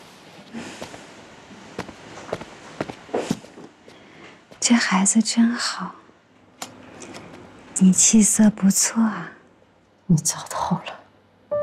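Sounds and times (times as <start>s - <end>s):
footsteps walking away: 0.7s - 4.6s
speech: 4.7s - 6.0s, 7.8s - 9.4s, 10.1s - 11.0s.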